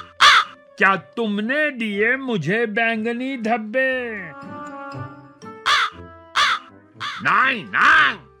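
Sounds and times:
crow cawing: 0:00.0 - 0:00.6, 0:05.7 - 0:08.2
speech: 0:00.8 - 0:05.0, 0:07.2 - 0:08.3.

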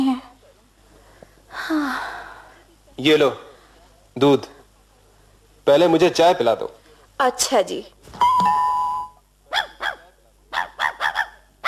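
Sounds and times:
speech: 0:03.0 - 0:03.5, 0:04.2 - 0:04.6, 0:05.6 - 0:08.5
steady high tone: 0:08.2 - 0:09.2
dog barking: 0:09.5 - 0:11.6.

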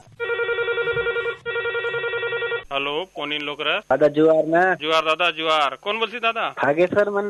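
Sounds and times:
telephone ringing for an incoming listener call to a radio phone-in folk song request program: 0:00.2 - 0:02.8
speech: 0:02.8 - 0:07.2.

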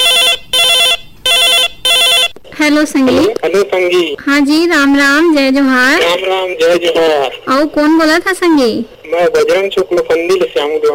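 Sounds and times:
incoming call ringing on a radio phone-in line: 0:00.0 - 0:02.4
speech: 0:02.7 - 0:10.9.

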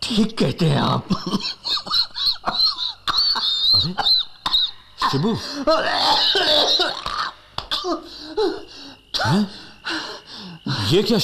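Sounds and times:
speech: 0:00.1 - 0:02.6, 0:03.8 - 0:04.1, 0:05.1 - 0:07.2, 0:07.8 - 0:10.0, 0:10.6 - 0:11.2
person coughing up phlegm with blood: 0:01.1 - 0:10.4
throaty gasping breaths: 0:08.0 - 0:10.9.

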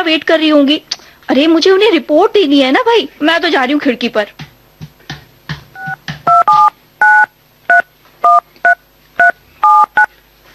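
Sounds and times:
speech: 0:00.0 - 0:04.5
telephone keypad dialing tones: 0:05.8 - 0:10.1.

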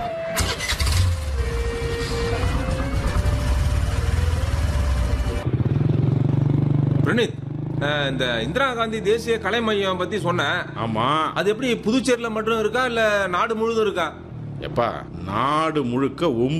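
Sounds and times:
vehicle engine cranking and starting: 0:00.0 - 0:06.3
vehicle engine revving as it pulls away: 0:00.3 - 0:10.1
speech: 0:07.2 - 0:16.5.

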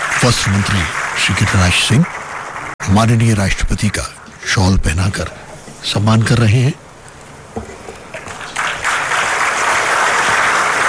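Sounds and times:
audience applause at a ceremony in a large room: 0:00.0 - 0:03.7, 0:08.1 - 0:10.8
speech: 0:00.2 - 0:02.2, 0:02.8 - 0:06.8.

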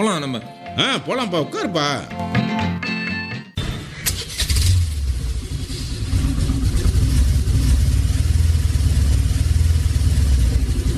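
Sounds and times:
speech: 0:00.0 - 0:02.6
car engine starting and driving off: 0:04.1 - 0:10.9.

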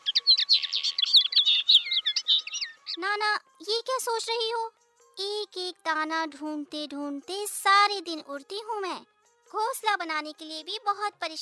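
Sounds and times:
several small birds chirping: 0:00.0 - 0:03.4
speech: 0:03.0 - 0:11.4.

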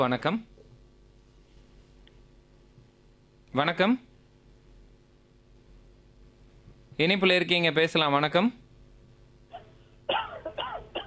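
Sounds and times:
speech: 0:00.0 - 0:00.6, 0:03.5 - 0:04.1, 0:07.0 - 0:08.6
caller coughing on a phone line: 0:09.5 - 0:11.0.

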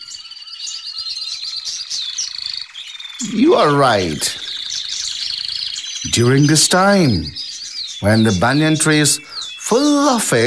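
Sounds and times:
crows calling in a banyan tree in spring: 0:00.0 - 0:06.1, 0:07.3 - 0:10.0
mynas chirping in a banyan tree in spring: 0:00.0 - 0:10.4
speech: 0:03.2 - 0:04.4, 0:06.1 - 0:07.4, 0:08.0 - 0:10.4
parrots chirping and squawking in a banyan tree in spring: 0:03.2 - 0:10.4.

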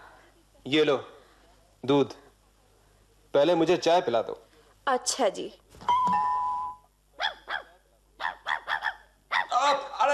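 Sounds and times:
speech: 0:00.6 - 0:01.1, 0:01.8 - 0:02.2, 0:03.3 - 0:05.9
dog barking: 0:07.2 - 0:09.6.

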